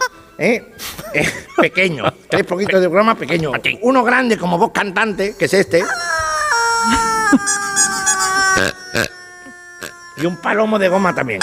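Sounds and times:
speech: 0.4s - 6.1s, 6.9s - 7.7s, 8.6s - 9.1s, 10.2s - 11.4s
laughter: 1.0s - 3.8s, 5.8s - 9.6s
rubber chicken toy squeezed with a long reedy squawk: 5.8s - 11.4s.

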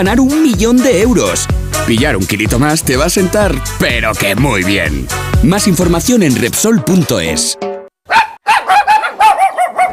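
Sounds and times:
speech: 0.0s - 7.7s
dog barking: 8.0s - 9.9s.

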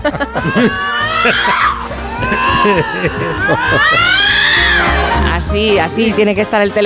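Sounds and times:
speech: 0.0s - 4.8s, 5.4s - 6.8s
laughter: 0.0s - 4.9s
Iberian lynxes screaming: 0.2s - 5.3s.

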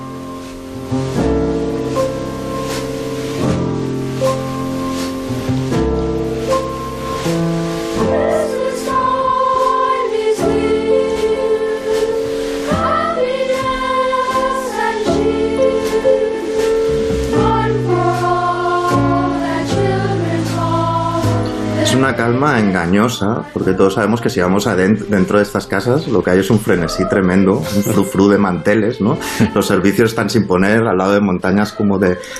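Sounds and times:
gentle festive jazz piano trio Christmas film music: 0.0s - 32.3s
speech: 22.3s - 32.3s
laughter: 27.5s - 28.2s.

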